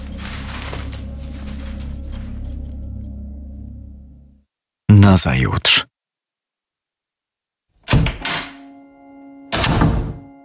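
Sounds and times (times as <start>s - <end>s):
speech: 5.0s - 5.9s
front entrance door swinging open with a thunk: 7.9s - 8.6s.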